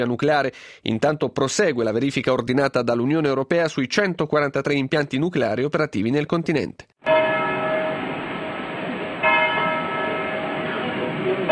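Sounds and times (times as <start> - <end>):
speech: 0.0 - 7.2
church bell tolling: 7.0 - 11.4.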